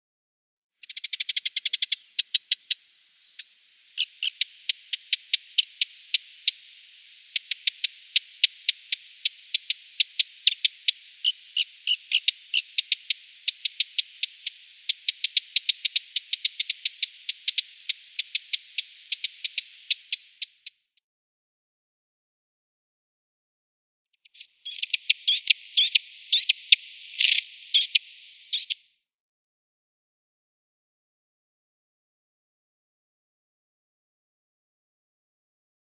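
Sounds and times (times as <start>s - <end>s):
Subalpine Warbler calls: 0.8s - 20.8s, 24.2s - 28.8s.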